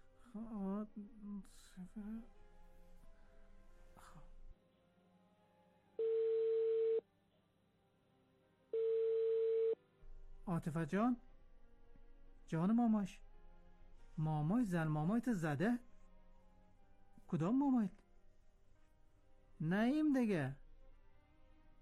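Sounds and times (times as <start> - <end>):
speech: 0.3 - 2.4, 4.0 - 4.3, 10.5 - 11.3, 12.5 - 13.2, 14.2 - 15.9, 17.3 - 18.0, 19.6 - 20.6
long steady telephone ringback tones through a phone line: 6.0 - 7.0, 8.8 - 9.8.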